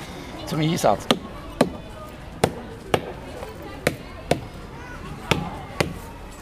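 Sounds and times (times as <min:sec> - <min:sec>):
speech: 0:00.5 - 0:01.2
hammer striking a tree trunk: 0:01.0 - 0:01.8, 0:02.4 - 0:03.2, 0:03.8 - 0:04.6, 0:05.2 - 0:06.0.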